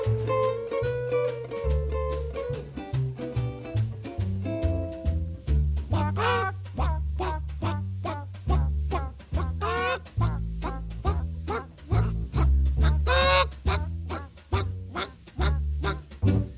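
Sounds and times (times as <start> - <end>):
bouncy band with a walking bass line: 0.0 - 16.5
jazz singer imitating a hen's clucking: 5.9 - 16.1.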